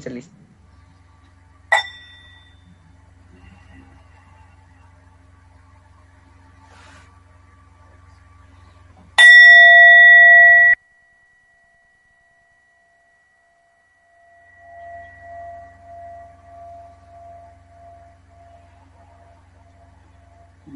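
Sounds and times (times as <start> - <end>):
speech: 0.0 - 0.5
meditation bell struck and ringing: 1.7 - 2.8, 9.2 - 20.7.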